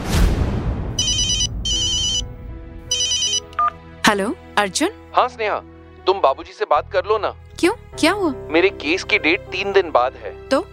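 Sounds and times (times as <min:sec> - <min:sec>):
whoosh: 0:00.0 - 0:01.8
phone ringtone chirping for an incoming call: 0:01.0 - 0:03.8
speech: 0:04.1 - 0:10.7.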